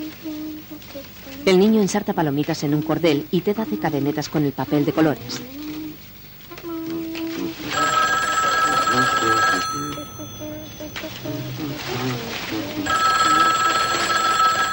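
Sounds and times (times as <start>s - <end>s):
speech: 1.4s - 5.6s
telephone ringing at home: 7.6s - 14.7s.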